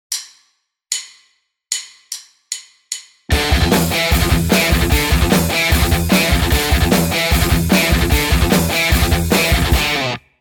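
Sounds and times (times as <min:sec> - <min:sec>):
guitar riff in gallop rhythm with 16th note flow: 0:03.3 - 0:10.3.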